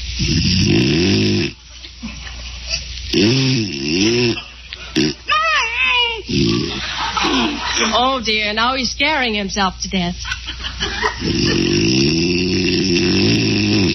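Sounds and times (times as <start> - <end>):
speech: 0.2 - 0.8, 8.2 - 10.5, 11.2 - 12.2
man snoring loudly in bed: 0.2 - 1.6, 3.1 - 4.4, 5.0 - 5.2, 6.3 - 6.8, 11.2 - 13.9
laughter: 4.3 - 5.0, 6.4 - 8.2, 10.2 - 11.8.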